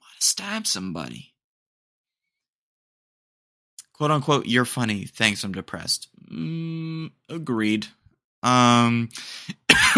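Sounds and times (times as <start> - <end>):
speech: 0.2 - 1.3, 4.0 - 9.9
sustained voiced throat sound: 6.2 - 7.1
rough breathy forceful cough: 9.5 - 9.9.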